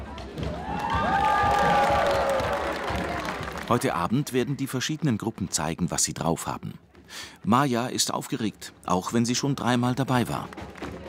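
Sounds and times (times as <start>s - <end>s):
crowd of several hundred spectators murmuring and cheering in a performers' camp: 0.0s - 5.8s, 10.1s - 11.0s
scattered clapping: 0.1s - 5.8s, 10.1s - 11.0s
excited shouts: 0.6s - 3.4s
speech: 3.7s - 10.7s.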